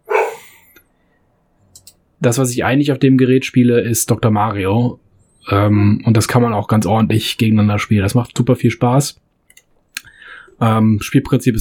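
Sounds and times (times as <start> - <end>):
dog barking: 0.0 - 0.6
speech: 2.2 - 9.2, 10.6 - 11.6.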